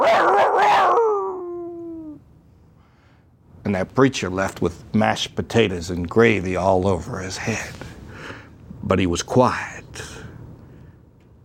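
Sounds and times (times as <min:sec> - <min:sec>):
dog-like howl with yelping burst and falling wail: 0:00.0 - 0:02.2
speech: 0:03.7 - 0:07.9, 0:08.9 - 0:10.1.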